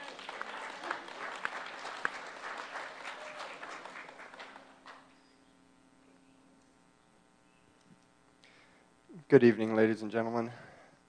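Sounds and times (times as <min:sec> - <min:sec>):
audience applause: 0:00.0 - 0:05.1
speech: 0:09.3 - 0:10.7.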